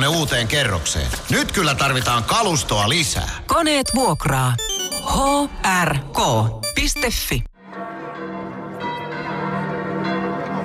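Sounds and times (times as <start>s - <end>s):
speech: 0.1s - 7.5s
church bells of St. Peter's Basilica in Rome tolling: 7.6s - 10.6s.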